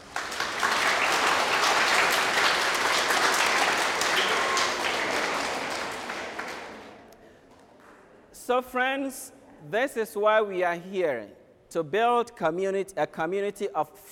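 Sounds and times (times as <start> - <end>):
audience clapping for themselves: 0.0 - 7.2
speech: 8.5 - 14.1.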